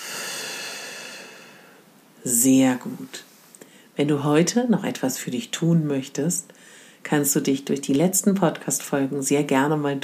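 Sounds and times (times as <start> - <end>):
long exhale through the mouth during a guided breathing exercise: 0.0 - 1.8
speech: 2.2 - 3.3, 4.0 - 10.0.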